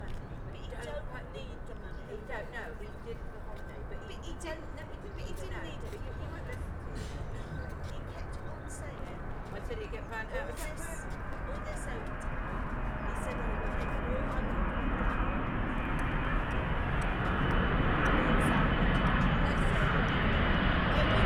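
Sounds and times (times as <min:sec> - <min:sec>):
people talking: 0:00.0 - 0:14.6, 0:18.1 - 0:20.2, 0:20.9 - 0:21.2
airplane before landing: 0:02.9 - 0:21.2.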